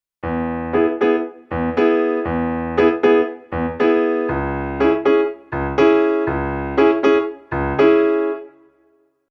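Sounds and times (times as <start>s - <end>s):
motown music: 0.2s - 8.5s.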